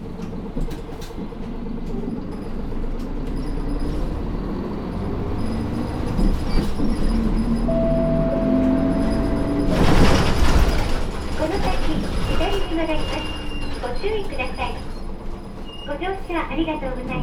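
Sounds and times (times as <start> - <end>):
city expressway express bus engine rumbling: 0.0 - 17.2
rising bus engine whine: 7.2 - 10.8.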